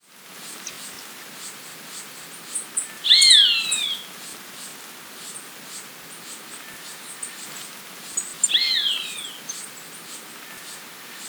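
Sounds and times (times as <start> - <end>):
black-crested warbler Myiothlypis nigrocristata song phrases: 0.5 - 11.2
faint high black-crested warbler chips: 2.8 - 4.1, 6.3 - 11.2.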